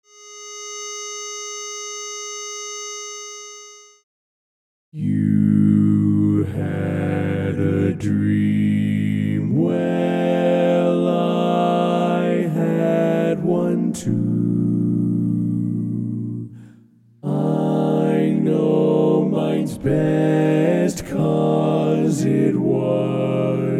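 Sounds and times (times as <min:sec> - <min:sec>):
bass vocal part learning track: 0:05.0 - 0:23.7.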